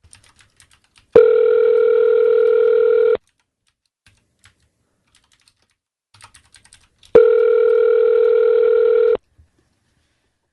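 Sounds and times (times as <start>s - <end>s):
telephone ringback tone on a call to a hotel: 1.2s - 3.2s, 7.2s - 9.2s.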